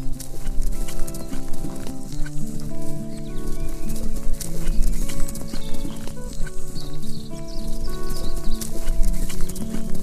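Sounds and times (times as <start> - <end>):
continuous tonal music bed: 0.0 - 10.0
faint birdsong high above: 0.0 - 10.0
white horse hooves clip-clopping at a walk through a forest: 0.0 - 10.0.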